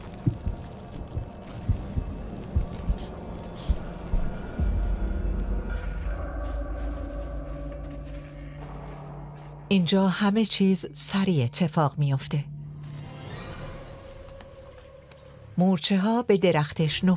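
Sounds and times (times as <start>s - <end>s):
deep heartbeat of prey squeezed by a boa: 0.0s - 9.7s
speech: 9.7s - 12.5s, 15.6s - 17.1s.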